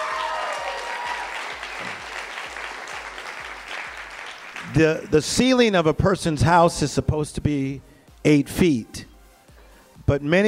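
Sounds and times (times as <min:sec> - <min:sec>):
large audience clapping: 0:00.0 - 0:05.3
speech: 0:04.7 - 0:09.1, 0:10.1 - 0:10.4.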